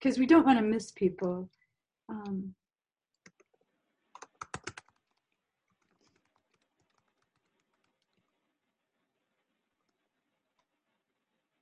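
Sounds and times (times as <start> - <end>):
speech: 0.0 - 2.6
typing on a computer keyboard: 3.2 - 8.3.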